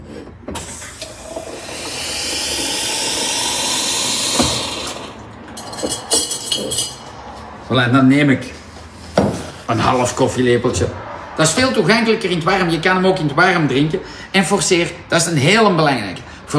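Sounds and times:
boiling water pouring into a cup holding cold water: 0:00.6 - 0:05.2
speech: 0:07.7 - 0:08.6, 0:09.7 - 0:16.5.

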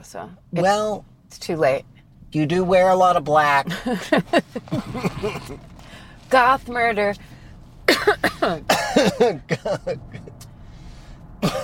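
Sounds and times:
speech: 0:00.0 - 0:05.7, 0:06.3 - 0:07.3, 0:07.9 - 0:10.2
person coughing uncontrollably: 0:04.7 - 0:05.6, 0:07.9 - 0:09.9, 0:11.4 - 0:11.6.

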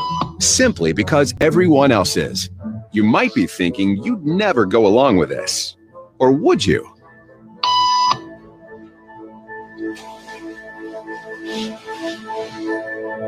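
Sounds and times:
loud electronic beep cue in a hidden camera conformity experiment: 0:00.0 - 0:00.4, 0:07.6 - 0:08.3
speech: 0:00.4 - 0:06.9
soft rustles: 0:09.8 - 0:12.8.

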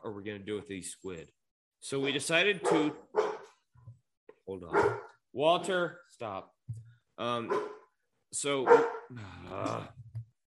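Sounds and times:
speech: 0:00.0 - 0:03.3, 0:04.5 - 0:07.7, 0:08.3 - 0:10.0
dog barking: 0:02.0 - 0:03.6, 0:04.7 - 0:05.2, 0:07.5 - 0:07.9, 0:08.6 - 0:09.1.

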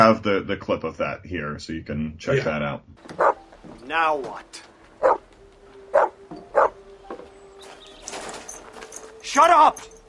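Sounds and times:
speech: 0:00.1 - 0:05.2, 0:09.3 - 0:10.0
dog barking: 0:03.2 - 0:03.4, 0:05.0 - 0:05.2, 0:05.9 - 0:06.8.

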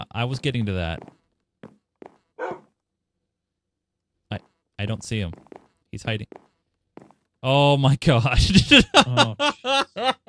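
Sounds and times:
speech: 0:00.1 - 0:01.2, 0:04.3 - 0:06.4, 0:07.4 - 0:10.2
dog barking: 0:02.4 - 0:02.7
laughter: 0:08.2 - 0:10.2.

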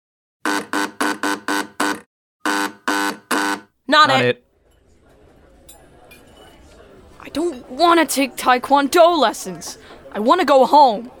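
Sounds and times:
harsh buzzer: 0:00.4 - 0:04.4
speech: 0:03.9 - 0:04.4, 0:07.3 - 0:11.1.

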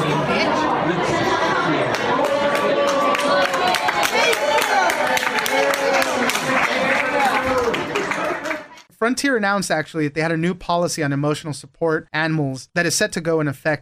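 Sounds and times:
crowd cheering and clapping: 0:01.1 - 0:08.9
speech: 0:09.0 - 0:13.8.

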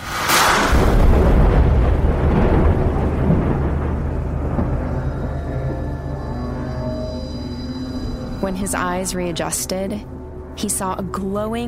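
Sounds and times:
heavy rain-like wash over a field of crops beside a dirt road: 0:00.0 - 0:09.1
thunderstorm deep rumbling roars over a field of crops: 0:00.4 - 0:11.2
speech: 0:08.5 - 0:11.6.

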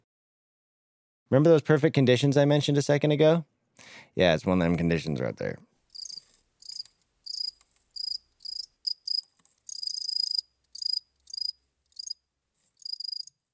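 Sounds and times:
speech: 0:01.3 - 0:05.7
cricket chirping: 0:06.0 - 0:12.2, 0:12.8 - 0:13.4.

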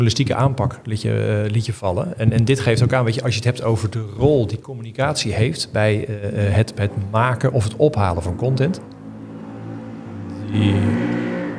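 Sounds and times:
speech: 0:00.0 - 0:09.0, 0:10.5 - 0:11.1
motorcycle engine passing by: 0:08.3 - 0:11.5.

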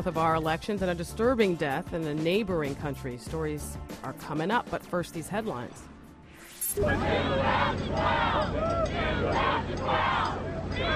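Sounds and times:
speech: 0:00.0 - 0:05.9, 0:06.8 - 0:10.9
political rally crowd cheering: 0:06.8 - 0:10.9
whoops and shouts from rally crowd: 0:06.8 - 0:10.9.

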